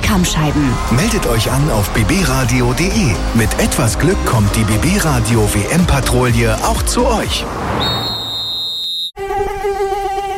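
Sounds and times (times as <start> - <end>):
speech: 0.1 - 8.1
mosquito whining in a high-pitched drone: 9.2 - 10.3.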